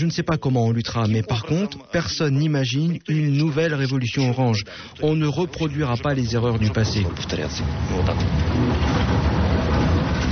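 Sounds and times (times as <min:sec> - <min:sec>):
speech: 0:00.0 - 0:09.5
tram rumbling heard from inside: 0:05.6 - 0:10.3.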